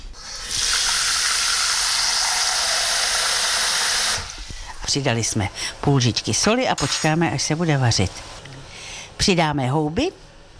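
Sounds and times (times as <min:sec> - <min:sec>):
water pouring into a pot: 0:00.2 - 0:04.4
speech: 0:04.9 - 0:08.5, 0:09.2 - 0:10.2.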